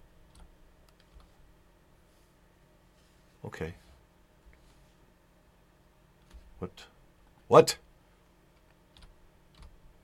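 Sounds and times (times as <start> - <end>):
soft typing on a computer keyboard: 0.3 - 1.3, 8.6 - 9.8
speech: 3.5 - 3.8, 6.6 - 6.9, 7.5 - 7.8.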